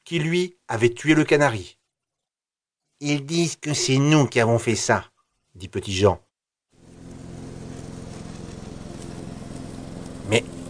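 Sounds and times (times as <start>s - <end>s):
speech: 0.1s - 1.8s, 3.0s - 6.2s, 10.3s - 10.6s
lawn mower engine running: 6.8s - 10.6s.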